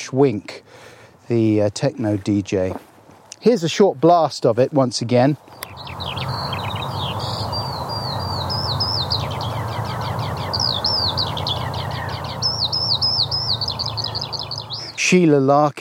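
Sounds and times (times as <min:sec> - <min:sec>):
speech: 0:00.0 - 0:06.0, 0:15.1 - 0:15.8
skylark singing: 0:05.5 - 0:15.1
low rumbling background of wind or noise: 0:05.6 - 0:14.9.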